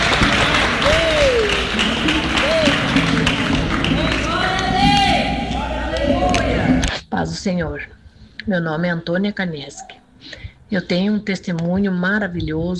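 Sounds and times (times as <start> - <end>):
large crowd clapping: 0.0 - 6.9
speech: 7.4 - 12.7.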